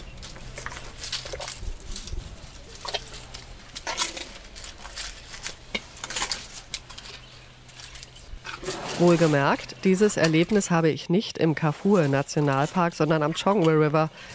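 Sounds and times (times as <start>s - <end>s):
elephant cow chewing: 0.0s - 10.6s
elephant cow snorting: 8.4s - 9.5s
speech: 9.0s - 14.3s.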